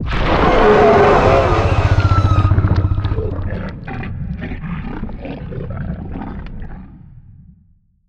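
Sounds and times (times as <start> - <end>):
voidspawn creature death sound: 0.0 - 5.5.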